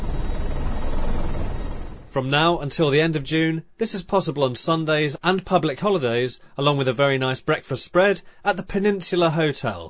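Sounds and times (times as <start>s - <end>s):
helicopter rotors thumping: 0.0s - 2.2s
speech: 2.1s - 9.8s.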